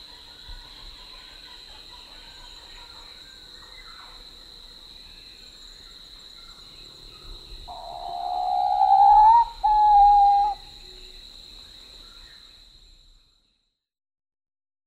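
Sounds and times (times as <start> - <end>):
Papuan pitta whistled call in Papua New Guinea: 7.7 - 10.6.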